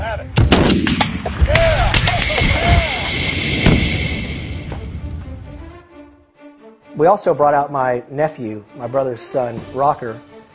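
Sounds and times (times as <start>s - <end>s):
gunshots fired at a propane tank: 0.4s - 4.8s
speech: 7.0s - 10.3s.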